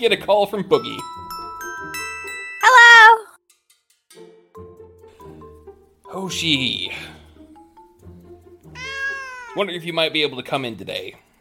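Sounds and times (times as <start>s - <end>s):
speech: 0.0s - 1.9s, 6.1s - 7.2s, 9.6s - 11.2s
cat meowing: 2.6s - 3.3s, 8.7s - 9.6s.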